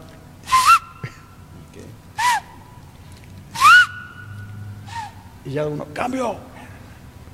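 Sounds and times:
human whistle blasts signalling changes in a training class: 0:00.5 - 0:01.2, 0:02.2 - 0:02.7, 0:03.6 - 0:05.2
speech: 0:05.4 - 0:06.5.

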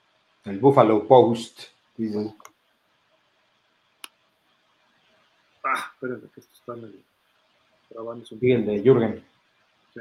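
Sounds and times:
speech: 0:00.4 - 0:02.5, 0:05.8 - 0:07.1, 0:07.9 - 0:09.3
crisp computer mouse clicks: 0:04.0 - 0:04.2.

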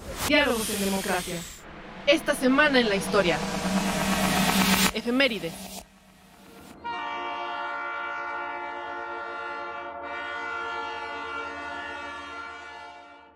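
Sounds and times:
brief burst of noise: 0:00.1 - 0:06.8
speech: 0:00.3 - 0:03.7, 0:04.6 - 0:05.7
rumble of a rolling train: 0:00.5 - 0:10.2
train horn blaring with rich stacked tones: 0:01.6 - 0:13.3.

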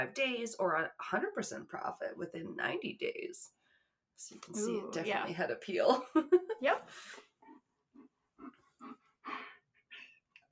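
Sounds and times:
speech: 0:00.0 - 0:03.6, 0:04.2 - 0:07.3
dog sighing breaths: 0:08.5 - 0:10.2.

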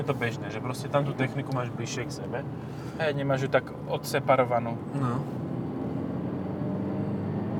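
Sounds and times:
speech: 0:00.0 - 0:05.4
Dacia car engine revving: 0:00.0 - 0:07.5.

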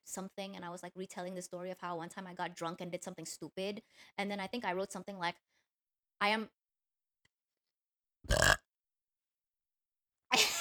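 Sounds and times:
speech: 0:00.2 - 0:05.6, 0:06.2 - 0:06.6
person burping: 0:08.3 - 0:08.6.

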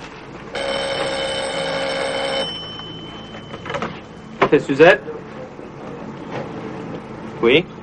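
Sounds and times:
bar telephone bell ringing: 0:00.5 - 0:04.4
speech: 0:04.5 - 0:05.2, 0:07.4 - 0:07.7.

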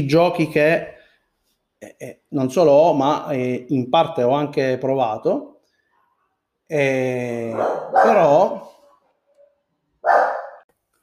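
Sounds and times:
speech: 0:00.0 - 0:01.0, 0:01.8 - 0:05.5, 0:06.7 - 0:08.7
dog barking: 0:07.5 - 0:09.0, 0:10.0 - 0:10.7.

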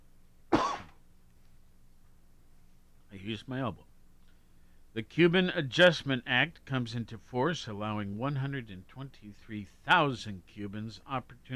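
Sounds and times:
person coughing: 0:00.5 - 0:00.9
speech: 0:03.2 - 0:03.9, 0:05.0 - 0:11.5.

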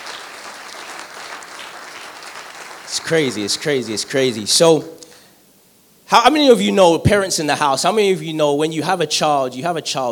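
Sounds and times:
large audience applause: 0:00.0 - 0:04.2
speech: 0:02.9 - 0:05.0, 0:06.1 - 0:10.1.

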